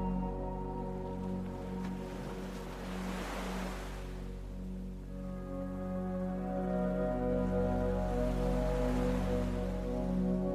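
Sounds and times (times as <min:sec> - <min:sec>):
constant low rumbling drone: 0:00.0 - 0:10.5
ocean waves breaking in slow surges: 0:01.0 - 0:05.0, 0:07.7 - 0:10.5.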